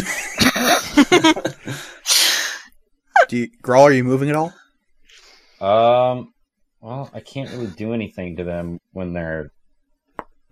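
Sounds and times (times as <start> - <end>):
laughter: 0.0 - 2.0, 6.9 - 8.7
voice imitating coughing up blood with gurgling sputters: 0.3 - 0.9, 7.4 - 7.8
speech: 1.1 - 1.5, 3.3 - 4.6, 5.6 - 9.6.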